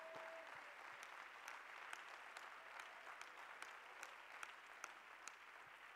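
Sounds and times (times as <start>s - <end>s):
audience clapping: 0.0s - 5.9s.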